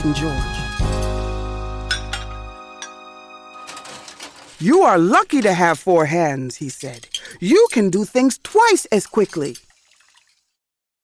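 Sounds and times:
speech: 0.0 - 0.6, 4.6 - 9.6
dishes and utensils clinking while being washed in a kitchen: 1.8 - 5.6, 6.6 - 8.0, 9.0 - 9.8.

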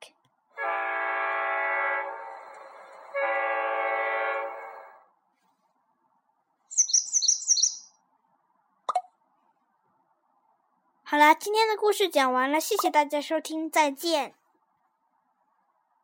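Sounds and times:
train horn blasts: 0.6 - 5.1
birds chirping: 6.7 - 8.0
speech: 11.2 - 14.4.

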